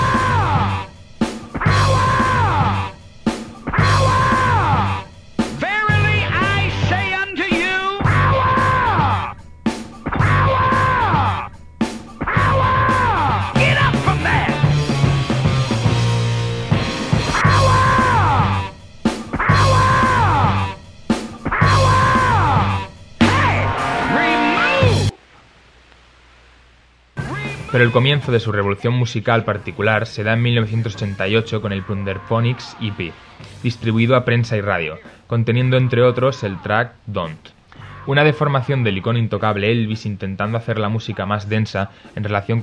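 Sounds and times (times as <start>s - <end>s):
American evangelist preacher shouting: 0.0s - 0.9s, 1.7s - 3.0s, 3.8s - 9.4s, 10.1s - 11.5s, 12.2s - 15.5s, 17.2s - 18.8s, 19.4s - 20.8s, 21.5s - 25.1s, 27.2s - 29.0s, 30.8s - 33.2s, 35.6s - 37.0s
looped rock guitar samples: 0.0s - 25.2s, 27.2s - 28.8s, 29.4s - 42.6s
speech: 27.8s - 42.6s.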